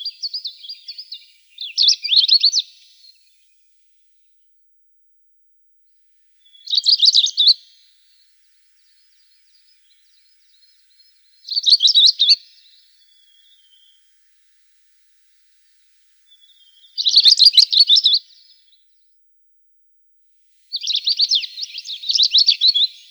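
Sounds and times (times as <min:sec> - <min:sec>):
long-tailed rosefinch Uragus singing buzzy twittering: 0:00.0 - 0:03.3, 0:06.4 - 0:07.8, 0:08.8 - 0:14.1, 0:15.0 - 0:18.7, 0:20.7 - 0:23.0.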